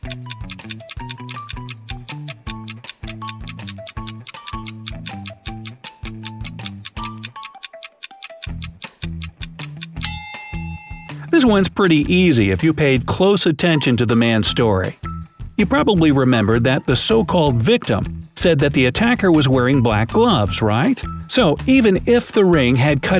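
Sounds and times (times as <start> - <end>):
clock ticking during countdown: 0.0 - 10.1
tense looping musical pulse with deep bass notes: 0.0 - 10.3
speech: 11.4 - 15.0, 15.6 - 23.1.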